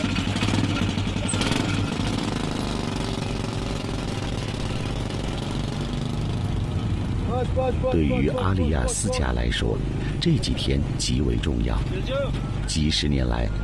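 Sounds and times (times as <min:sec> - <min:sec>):
three-wheeled motorcycle engine running: 0:00.0 - 0:09.2
speech: 0:07.4 - 0:13.6.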